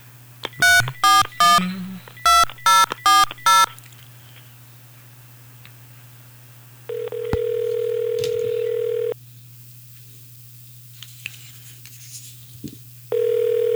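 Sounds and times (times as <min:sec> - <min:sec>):
telephone ringback tone during outgoing call: 0:00.6 - 0:03.8, 0:06.9 - 0:09.2, 0:13.1 - 0:13.7.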